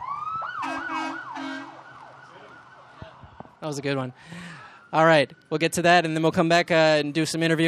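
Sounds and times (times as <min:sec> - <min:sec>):
emergency vehicle sirens wailing: 0:00.0 - 0:07.6
low horn-like tone: 0:00.6 - 0:01.8
speech: 0:03.6 - 0:07.6.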